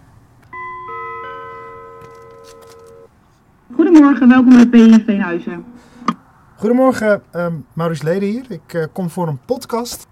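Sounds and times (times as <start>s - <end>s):
faint outdoor noise: 0.0s - 10.1s
electronic gate doorbell chiming three stacked tones: 0.5s - 3.1s
speech: 3.7s - 5.8s, 6.6s - 10.1s.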